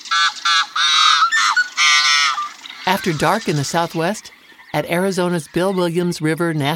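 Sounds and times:
yellow-headed blackbird gruff growls and toots at Rice Lake State Park in Minnesota: 0.0s - 5.3s
speech: 3.0s - 6.7s.

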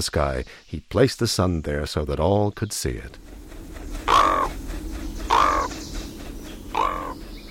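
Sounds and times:
speech: 0.0s - 3.4s
raven croaking: 3.2s - 7.4s.

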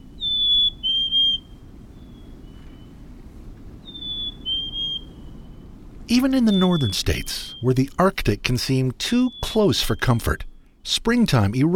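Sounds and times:
quiet low background noise: 0.0s - 11.7s
black-capped chickadee clear whistled two-note song: 0.1s - 2.9s, 3.8s - 8.0s, 9.0s - 10.6s
speech: 6.1s - 11.7s.

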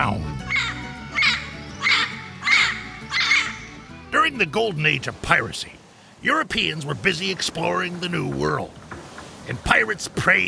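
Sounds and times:
parrot squawking: 0.4s - 4.0s
speech: 4.3s - 8.8s, 9.5s - 10.4s.

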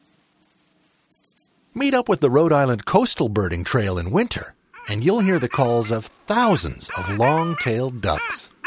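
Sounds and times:
Blackburnian Warbler singing along the Connecticut River in summer: 0.0s - 1.8s
speech: 1.8s - 8.5s.

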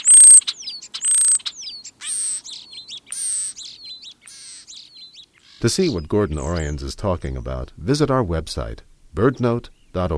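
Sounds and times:
European starling calls: 0.0s - 6.8s
speech: 5.6s - 10.1s.

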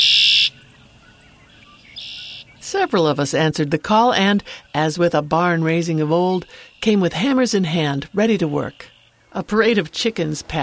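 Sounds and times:
male red-winged blackbird singing while courting at a wetland in early spring: 0.0s - 2.7s
speech: 2.8s - 10.6s.

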